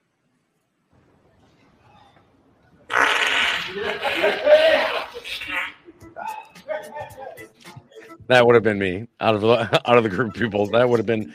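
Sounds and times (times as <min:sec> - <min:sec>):
long loud wet fart in a played video clip: 0:02.9 - 0:04.0
laughter: 0:03.5 - 0:07.4, 0:09.4 - 0:11.3
speech: 0:03.7 - 0:05.6, 0:08.3 - 0:11.3.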